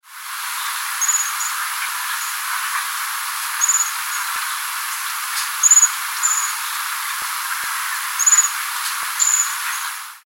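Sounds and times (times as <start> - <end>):
faint hiss: 0.0 - 10.2
common bushtit twittering calls: 1.0 - 2.8, 3.6 - 4.6, 5.5 - 6.9, 8.1 - 8.6, 9.2 - 10.0.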